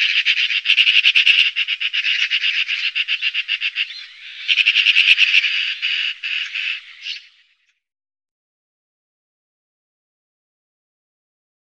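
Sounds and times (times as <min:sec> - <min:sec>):
Eurasian magpie chattering in a harsh rattle: 0:00.0 - 0:07.4.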